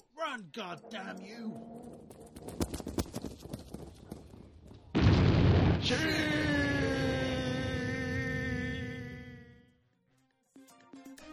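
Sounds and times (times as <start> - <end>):
rapid sharp ticks of a bomb: 0.3 - 4.4
speech: 0.4 - 2.9, 5.9 - 6.6
bomb exploding beside a taco shack: 4.8 - 9.2.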